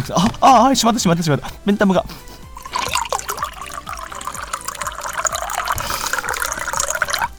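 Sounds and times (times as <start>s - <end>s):
speech: 0.0s - 2.3s
beer foam fizzing and bubbling: 1.0s - 7.3s
beer pouring into a glass: 2.6s - 7.3s.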